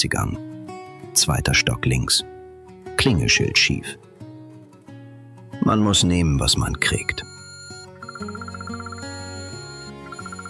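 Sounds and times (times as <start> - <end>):
speech: 0.0 - 0.4, 1.2 - 2.4, 3.0 - 4.1, 5.6 - 7.3
alarm clock ringing with rapid electronic beeps: 6.8 - 10.4.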